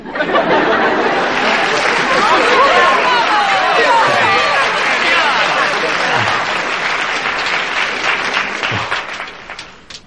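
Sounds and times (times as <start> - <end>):
laughter: 0.0 - 9.6
large crowd applauding: 0.2 - 10.0
dense murmur of overlapping crowd voices: 0.5 - 9.2
people shouting in a crowd: 1.5 - 7.3.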